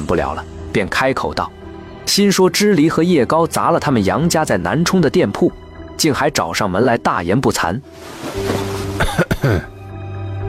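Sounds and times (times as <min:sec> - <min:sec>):
speech: 0:00.1 - 0:08.6, 0:09.2 - 0:09.7
man coughing: 0:09.0 - 0:09.8.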